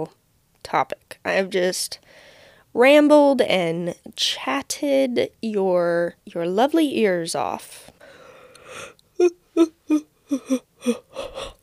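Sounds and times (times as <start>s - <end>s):
speech: 0.0s - 7.9s, 8.7s - 11.5s
person yawning: 8.6s - 11.6s.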